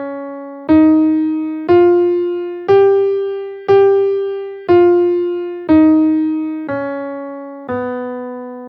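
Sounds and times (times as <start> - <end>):
guitar playing a half diminished scale in G minor: 0.4 - 8.4.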